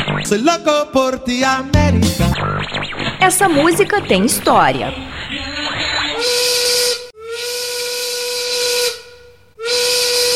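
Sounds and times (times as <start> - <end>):
speech: 0.2 - 2.5, 3.2 - 5.5
textile factory steam whistle blowing: 6.2 - 10.3.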